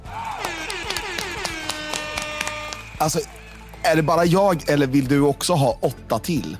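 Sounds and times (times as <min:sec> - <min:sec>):
small group applauding with scattered handclaps: 0:00.0 - 0:05.1
speech: 0:03.0 - 0:06.5.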